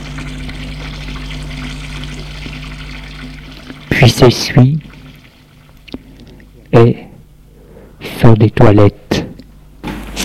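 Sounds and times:
water running at a washbasin while someone washes their head with soap: 0.0s - 6.6s
speech: 4.0s - 4.8s, 6.8s - 7.0s, 8.2s - 9.3s.

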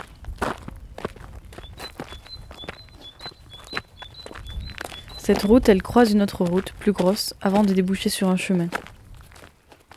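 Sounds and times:
footsteps of people walking outdoors along a road: 0.0s - 9.9s
speech: 5.3s - 8.8s.

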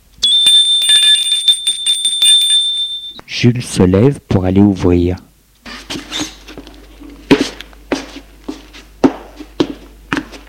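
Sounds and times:
doorbell ringing at front door with rattling striker: 0.2s - 3.2s
speech: 3.4s - 5.3s.

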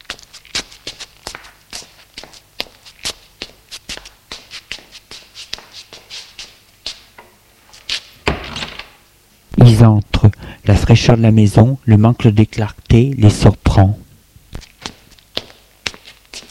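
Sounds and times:
footsteps on a hard floor: 0.0s - 8.6s, 14.5s - 16.4s
door of a small white one-storey house being opened: 8.2s - 9.0s
speech: 9.7s - 14.0s.

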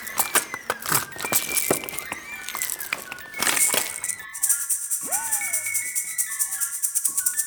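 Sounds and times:
castanets clicking: 0.0s - 6.0s.

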